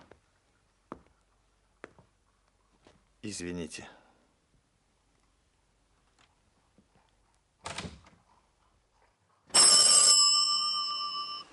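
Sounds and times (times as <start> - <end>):
speech: 3.2 - 4.0
telephone bell ringing: 9.5 - 11.5.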